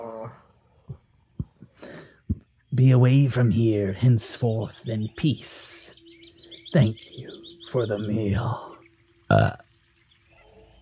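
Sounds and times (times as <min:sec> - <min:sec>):
speech: 0:02.8 - 0:06.0, 0:06.7 - 0:08.7, 0:09.3 - 0:09.6
loud gurgling burp after a meal: 0:09.3 - 0:09.7.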